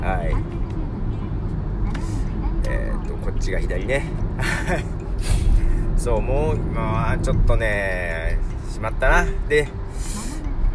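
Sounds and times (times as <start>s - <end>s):
road rumble from inside a car being driven: 0.0s - 10.7s
speech: 3.4s - 9.8s
faint higher road hiss: 4.0s - 10.7s.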